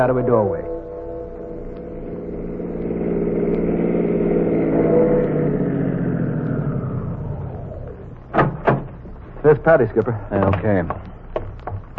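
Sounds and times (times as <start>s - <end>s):
speech: 0.0s - 0.8s, 9.4s - 11.1s
city car engine rumbling and idling: 0.0s - 9.4s.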